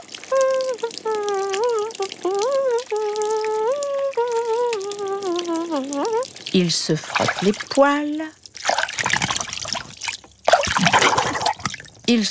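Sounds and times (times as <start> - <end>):
shower water running in a bathroom: 0.0 - 12.3
speech: 6.6 - 8.8, 12.1 - 12.3.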